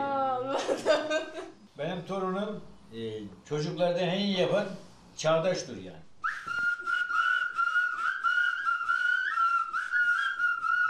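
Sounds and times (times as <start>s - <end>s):
speech: 0.6s - 6.1s
several people whistling together in harmony: 6.2s - 10.8s.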